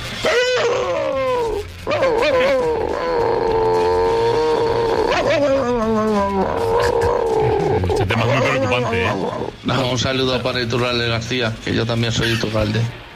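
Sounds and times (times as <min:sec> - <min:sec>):
person imitating a chihuahua's bark: 0:00.2 - 0:09.5
speech: 0:10.0 - 0:13.0.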